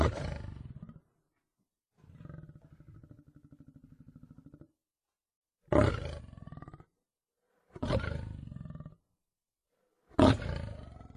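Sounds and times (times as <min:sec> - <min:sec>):
lion roaring: 0:00.0 - 0:01.1, 0:02.0 - 0:04.7, 0:05.7 - 0:06.9, 0:07.8 - 0:09.0, 0:10.2 - 0:11.1.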